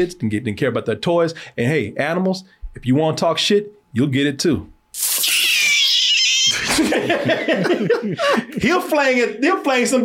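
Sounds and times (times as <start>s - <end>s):
speech: 0.0s - 5.3s, 7.1s - 10.0s
cat yowling and wailing: 5.2s - 6.7s
laughter: 6.5s - 8.9s.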